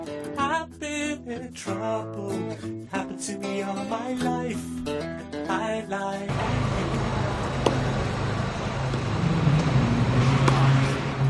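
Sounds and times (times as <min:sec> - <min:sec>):
speech: 0:00.5 - 0:07.2
cars passing on a road: 0:06.3 - 0:11.2
tennis racket striking a tennis ball: 0:06.9 - 0:11.2.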